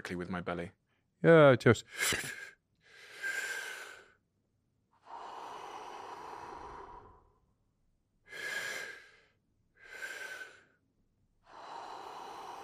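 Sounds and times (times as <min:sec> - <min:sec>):
speech: 0:00.0 - 0:02.5
person breathing deeply during a breathing exercise: 0:02.8 - 0:04.2, 0:05.0 - 0:07.5, 0:08.2 - 0:10.8, 0:11.4 - 0:12.6.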